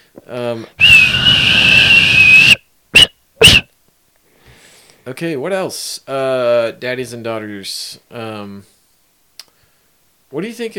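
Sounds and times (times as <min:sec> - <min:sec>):
speech: 0:00.2 - 0:01.7, 0:05.1 - 0:08.8, 0:10.3 - 0:10.7
person whistling: 0:00.8 - 0:03.6.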